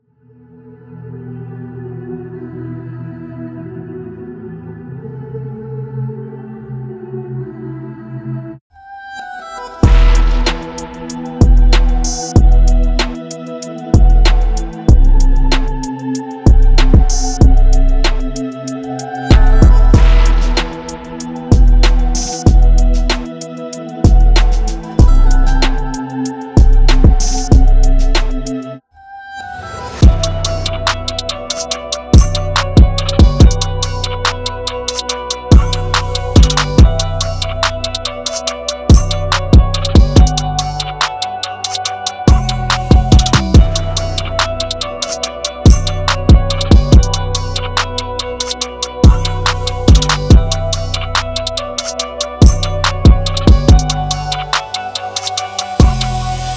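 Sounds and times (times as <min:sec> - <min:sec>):
German rap drum kit: 0:09.8 - 0:28.7, 0:30.0 - 0:56.3.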